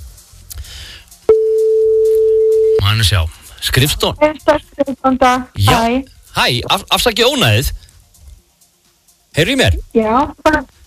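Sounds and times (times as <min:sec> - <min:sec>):
steady low-pitched telephone tone while calling an office: 0:01.3 - 0:02.9
speech: 0:03.0 - 0:07.8, 0:09.4 - 0:10.8.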